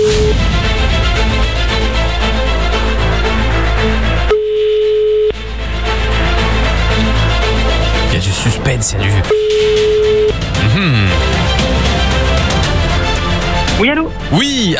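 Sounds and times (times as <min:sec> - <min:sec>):
music: 0:00.0 - 0:14.7
telephone ringback tone during a call to another number: 0:04.3 - 0:05.4, 0:09.2 - 0:10.4.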